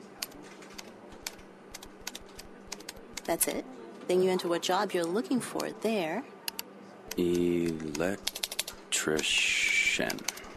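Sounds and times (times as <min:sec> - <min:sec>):
fingers typing a website address on a computer keyboard: 0:00.2 - 0:03.4, 0:06.5 - 0:09.4, 0:10.0 - 0:10.5
speech: 0:03.3 - 0:06.3, 0:07.2 - 0:08.4, 0:09.0 - 0:10.4.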